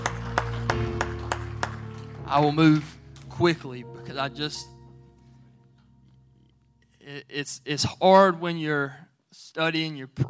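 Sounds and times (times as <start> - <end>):
audience clapping in a steady rhythm: 0.0 - 3.6
speech: 2.3 - 4.8, 7.1 - 10.2.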